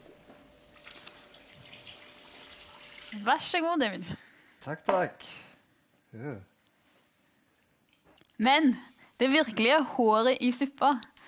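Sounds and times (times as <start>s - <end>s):
water being poured into a cake: 0.5s - 3.5s
speech: 3.1s - 5.4s, 6.1s - 6.5s, 8.4s - 11.2s.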